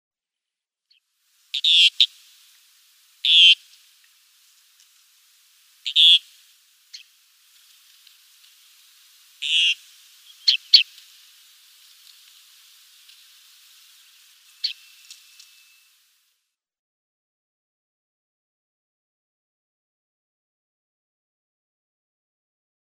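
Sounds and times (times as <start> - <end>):
Hoopoe-Lark calls: 1.6 - 2.1, 3.2 - 3.6, 5.9 - 6.2, 9.4 - 11.0, 14.6 - 15.2.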